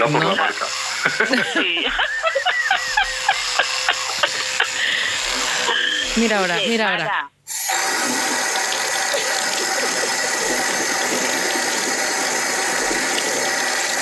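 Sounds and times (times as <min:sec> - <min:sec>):
speech: 0:00.0 - 0:03.1, 0:06.2 - 0:07.3
laughter: 0:00.0 - 0:07.2
water gushing from a tap into a sink: 0:07.5 - 0:13.9.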